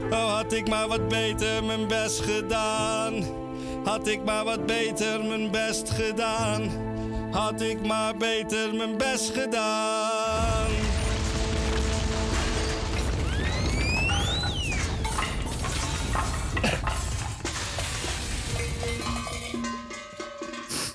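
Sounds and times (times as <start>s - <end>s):
speech: 0.1s - 10.5s
explosion sound effect rumble: 10.3s - 20.1s
clattering metallic debris: 10.3s - 20.9s
whistling swoop: 13.3s - 14.9s.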